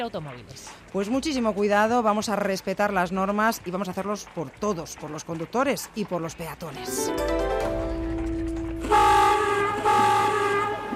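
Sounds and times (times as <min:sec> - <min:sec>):
speech: 0:00.0 - 0:07.5
early Renault convertible car horn honking: 0:08.8 - 0:10.9.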